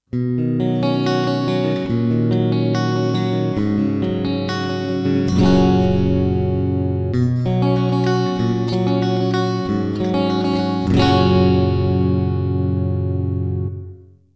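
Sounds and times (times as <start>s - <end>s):
clean tone with real reverb: 0.5s - 14.2s.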